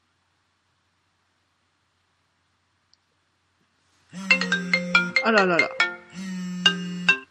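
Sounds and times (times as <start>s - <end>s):
phone ringtone for an incoming call: 4.2s - 7.3s
speech: 5.2s - 5.8s.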